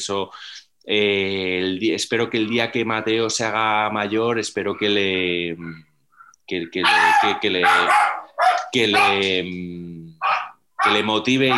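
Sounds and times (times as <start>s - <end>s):
speech: 0.0s - 5.9s, 6.5s - 11.5s
dog barking: 6.8s - 9.4s, 10.2s - 11.5s.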